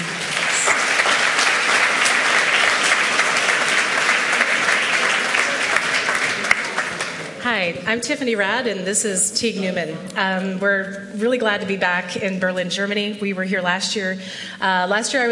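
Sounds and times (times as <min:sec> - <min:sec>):
sustained applause from a large audience: 0:00.0 - 0:07.4
speech: 0:07.5 - 0:15.2.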